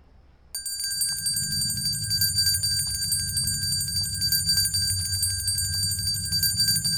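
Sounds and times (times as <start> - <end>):
bell ringing: 0.6 - 6.9
low rumbling background: 1.0 - 6.9.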